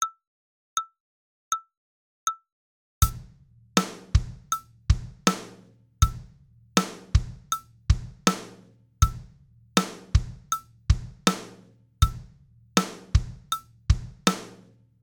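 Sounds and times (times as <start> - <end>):
four-beat rhythm: 3.0 - 14.6.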